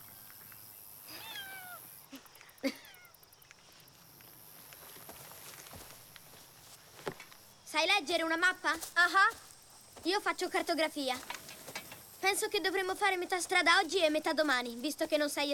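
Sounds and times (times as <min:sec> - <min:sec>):
faint shuffling: 0:00.0 - 0:15.5
cat meowing: 0:01.1 - 0:01.8
speech: 0:02.6 - 0:02.8, 0:07.8 - 0:11.3, 0:12.2 - 0:15.5.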